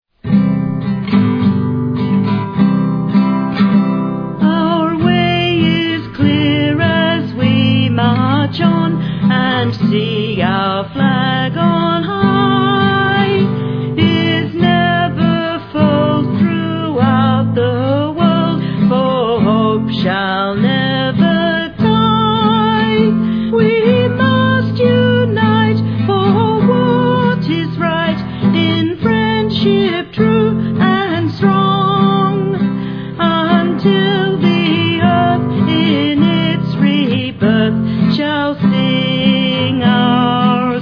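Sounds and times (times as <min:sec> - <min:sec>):
guitar accompaniment: 0:00.1 - 0:40.7
person singing a world song in English: 0:04.4 - 0:40.7.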